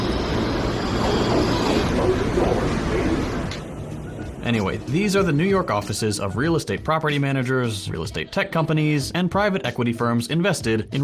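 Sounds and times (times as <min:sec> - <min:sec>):
New York subway train rumbling: 0:00.0 - 0:06.5
speech: 0:04.5 - 0:11.0.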